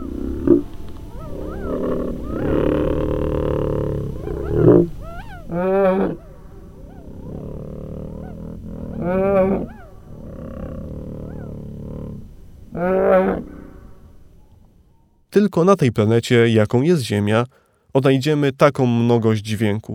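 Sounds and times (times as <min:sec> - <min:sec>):
simulated roars and growls of Mesozoic-era animals: 0:00.0 - 0:14.4
continuous low rumbling bed: 0:00.0 - 0:15.2
speech: 0:15.4 - 0:19.9.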